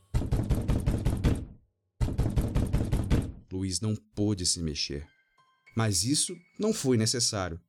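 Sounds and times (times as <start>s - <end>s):
rapid knocking on a door: 0.1s - 3.4s
speech: 3.6s - 5.2s, 5.8s - 7.6s.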